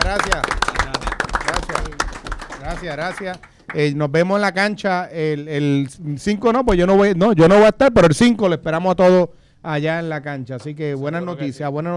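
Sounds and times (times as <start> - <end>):
speech: 0.0 - 0.7, 1.5 - 11.9
crowd applauding: 0.0 - 4.0.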